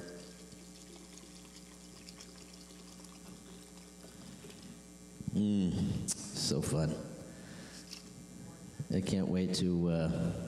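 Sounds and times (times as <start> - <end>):
water pouring into a container: 0.0 - 4.6
speech: 5.4 - 7.1, 8.9 - 10.4.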